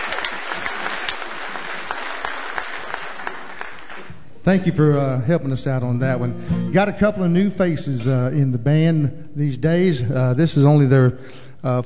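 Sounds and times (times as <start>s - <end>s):
audience applause at a live band show: 0.0s - 4.2s
speech: 4.4s - 11.8s.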